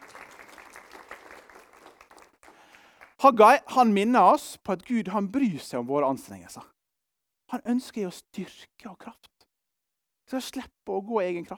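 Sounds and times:
crowd applauding: 0:00.0 - 0:03.1
speech: 0:03.2 - 0:06.7, 0:07.5 - 0:09.3, 0:10.3 - 0:11.5.

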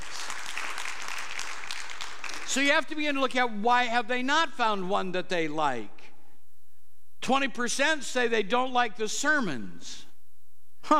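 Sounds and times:
audience applauding in a church: 0:00.0 - 0:02.6
speech: 0:02.5 - 0:06.0, 0:07.2 - 0:10.1.

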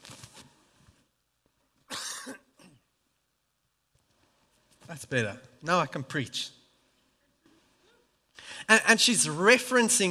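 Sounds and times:
preacher coughing during a sermon: 0:01.9 - 0:02.8
speech: 0:04.9 - 0:06.6, 0:08.7 - 0:10.0.

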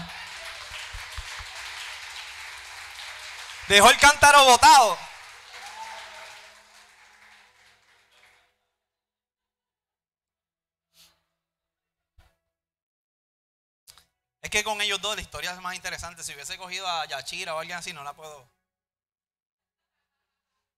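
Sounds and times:
audience applause: 0:00.0 - 0:08.5
speech: 0:03.7 - 0:05.0, 0:14.6 - 0:18.6
man speaking loudly: 0:03.7 - 0:05.1, 0:14.4 - 0:18.4.

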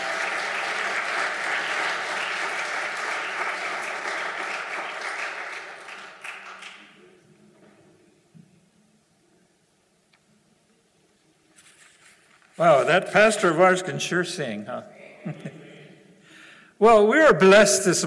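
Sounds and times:
church congregation clapping after a song during a worship service: 0:00.0 - 0:07.2
speech: 0:12.6 - 0:15.5, 0:16.8 - 0:18.0.

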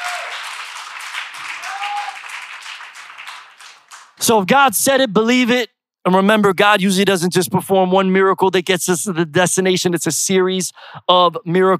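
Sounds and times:
church congregation clapping: 0:00.0 - 0:04.3
speech: 0:04.2 - 0:11.7.

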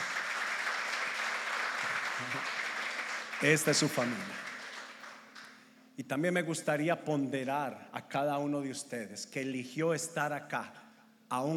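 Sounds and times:
audience applause welcoming first-time visitors: 0:00.0 - 0:05.6
speech: 0:02.2 - 0:02.6, 0:03.4 - 0:04.5, 0:06.0 - 0:11.5.

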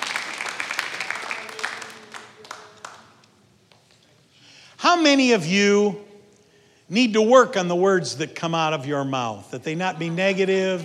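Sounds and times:
congregation clapping: 0:00.0 - 0:03.3
speech: 0:04.9 - 0:06.0, 0:06.9 - 0:10.8.

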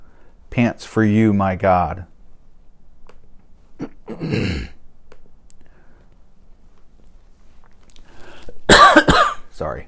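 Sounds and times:
quiet breathing: 0:00.0 - 0:00.5, 0:05.6 - 0:06.4, 0:07.4 - 0:08.6
speech: 0:00.6 - 0:02.1, 0:04.2 - 0:04.8, 0:09.6 - 0:09.8
harsh forceful coughing fit: 0:03.8 - 0:04.8, 0:08.7 - 0:09.5.

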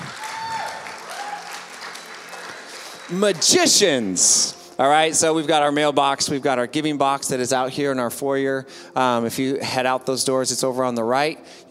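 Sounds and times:
church congregation applauding: 0:00.0 - 0:04.6
speech: 0:03.1 - 0:11.6.

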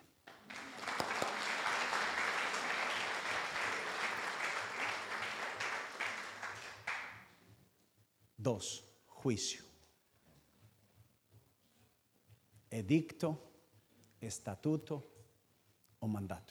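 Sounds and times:
crowd applauding for an actor: 0:00.0 - 0:07.3
speech: 0:08.4 - 0:09.7, 0:12.8 - 0:13.5, 0:14.2 - 0:15.2, 0:16.0 - 0:16.5.

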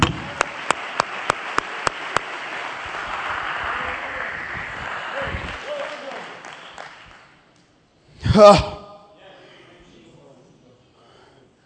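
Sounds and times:
congregation applause in a large room: 0:00.0 - 0:07.4
speech: 0:08.4 - 0:08.7.

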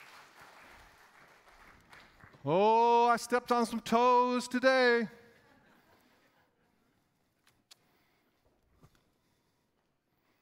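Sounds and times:
audience applauding: 0:00.0 - 0:02.6
speech: 0:02.4 - 0:05.2.

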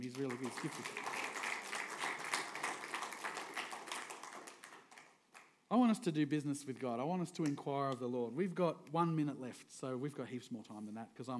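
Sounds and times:
speech: 0:00.0 - 0:01.2, 0:05.7 - 0:11.3
audience applauding a keyboard player: 0:00.0 - 0:05.5.

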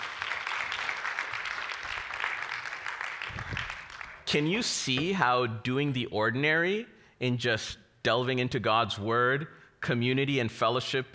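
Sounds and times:
crowd applauding: 0:00.0 - 0:04.4
speech: 0:04.3 - 0:11.1.

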